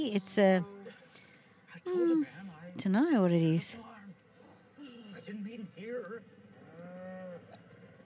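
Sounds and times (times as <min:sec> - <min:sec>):
speech: 0:00.0 - 0:00.8, 0:01.7 - 0:03.9, 0:05.2 - 0:06.4
faint outdoor noise: 0:00.0 - 0:08.0
cow mooing: 0:06.6 - 0:07.8.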